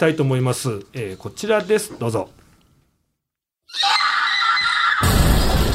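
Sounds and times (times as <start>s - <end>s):
speech: 0.0s - 2.4s
loud piercing scream in horror trailer: 3.7s - 5.6s.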